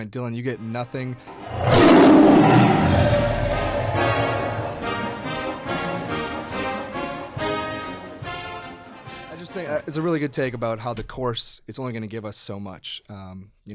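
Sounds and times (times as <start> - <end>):
speech: 0.0 - 3.3, 9.4 - 13.7
tiger roar sound effect from a soundboard: 1.3 - 5.2.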